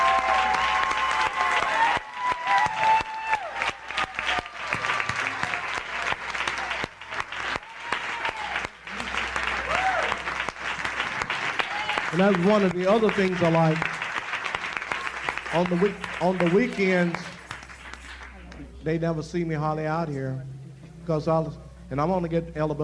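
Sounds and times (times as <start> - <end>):
faint cheers and scattered whoops: 0.0 - 5.8, 7.5 - 8.7, 9.5 - 10.3, 11.6 - 12.0
church audience clapping: 0.0 - 18.8
speech: 12.2 - 14.0, 15.5 - 17.3, 18.8 - 22.8.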